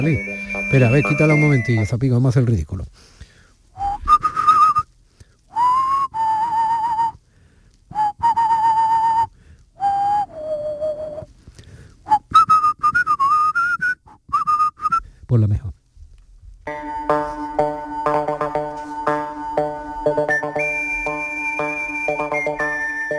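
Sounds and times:
man whistling a western film theme melody: 0:00.0 - 0:02.0, 0:03.8 - 0:04.9, 0:05.5 - 0:07.2, 0:07.9 - 0:11.3, 0:12.1 - 0:15.1, 0:16.7 - 0:23.1
speech: 0:00.0 - 0:03.1.

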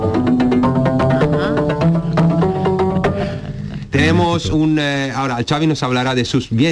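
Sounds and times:
homemade rubber band instrument on a polystyrene box plucked: 0:00.0 - 0:04.6
speech: 0:04.0 - 0:06.7.

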